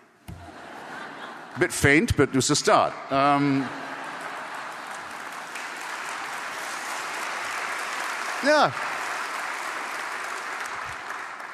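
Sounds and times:
laughter: 0.3s - 5.6s
speech: 1.6s - 3.8s, 8.4s - 9.0s
scattered audience applause: 3.1s - 11.5s.

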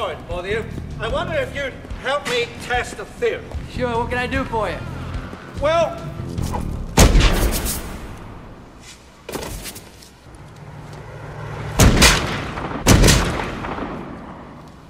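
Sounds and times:
speech: 0.2s - 4.9s, 5.6s - 6.6s
gunshots: 6.4s - 8.4s, 11.1s - 14.8s
steady hiss: 6.9s - 14.8s.

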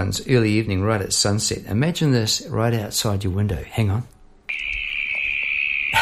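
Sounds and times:
speech: 0.0s - 4.2s
broad burst of noise: 4.5s - 5.9s
cricket trilling at sunset: 4.5s - 5.9s.

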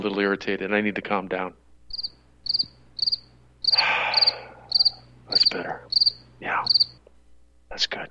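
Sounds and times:
speech: 0.0s - 1.6s, 5.3s - 7.0s, 7.7s - 8.0s
crickets chirping: 1.9s - 7.0s.

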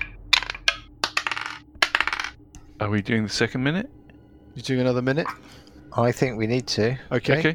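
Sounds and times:
six-sided dice rolled on a hard surface during a tabletop game: 0.0s - 2.4s
speech: 2.8s - 4.0s, 4.6s - 7.5s.

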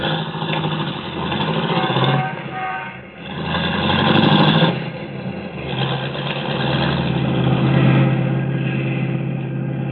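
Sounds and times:
car engine revving as the car pulls away: 0.0s - 9.9s.

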